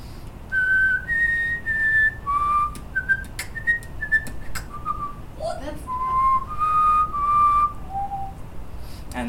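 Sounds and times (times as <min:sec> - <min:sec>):
whistled melody in whistle box style: 0:00.5 - 0:05.2, 0:05.8 - 0:08.4
beatbox mouth-made percussive clicks and pops: 0:02.7 - 0:04.9.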